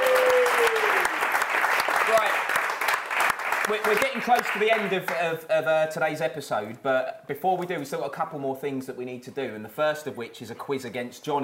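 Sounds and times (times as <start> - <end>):
whistle or cheer from the crowd: 0.0 - 1.2
audience applause: 0.0 - 5.3
speech: 3.7 - 11.4.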